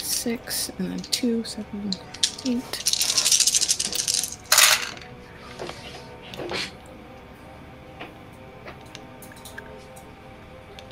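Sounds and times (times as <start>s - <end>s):
speech: 0.2s - 2.9s
six dice rolled for a tabletop role-playing game check: 1.0s - 1.3s, 1.9s - 5.0s.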